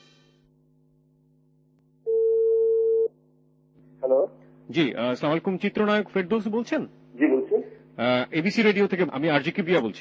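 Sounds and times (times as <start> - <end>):
telephone call connecting tone with mid-pitched electronic beeps: 2.1 - 3.1
speech: 4.7 - 7.3, 8.0 - 10.0.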